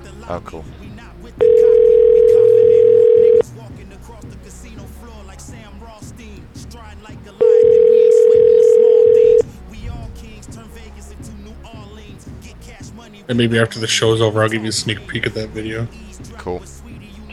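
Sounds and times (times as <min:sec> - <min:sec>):
speech: 0:00.3 - 0:01.5, 0:13.3 - 0:16.8
telephone ringing tone over a call line: 0:01.4 - 0:03.4, 0:07.4 - 0:09.4.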